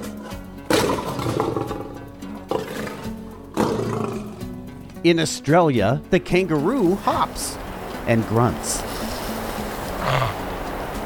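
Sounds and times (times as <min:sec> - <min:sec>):
lion roaring: 0:00.0 - 0:04.7, 0:09.9 - 0:10.5
speech: 0:05.0 - 0:09.0.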